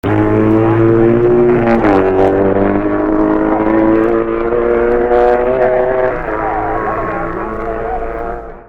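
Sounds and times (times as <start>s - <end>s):
1958 BMW motorcycle: 0.0s - 8.6s.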